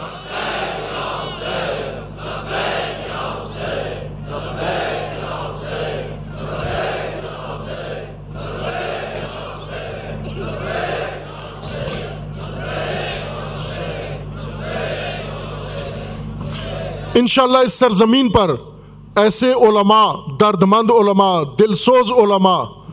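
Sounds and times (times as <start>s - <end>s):
large crowd in a valley chanting a slogan in unison: 0.0s - 17.3s
constant low hum: 0.0s - 22.9s
speech: 17.2s - 22.8s.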